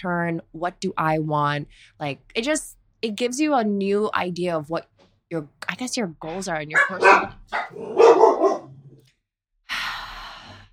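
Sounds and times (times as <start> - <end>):
speech: 0.0 - 8.6
dog barking on a living room floor: 6.8 - 9.0.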